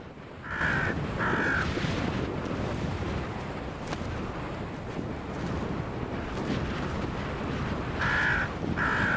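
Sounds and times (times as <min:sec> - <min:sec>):
steady rushing wind or water noise: 0:00.0 - 0:09.1
crows giving harsh alarm calls while mobbing an eagle: 0:00.4 - 0:01.7, 0:08.0 - 0:09.1.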